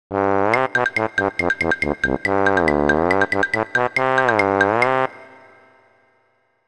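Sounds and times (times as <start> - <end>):
trombone tremor: 0.2 - 5.4.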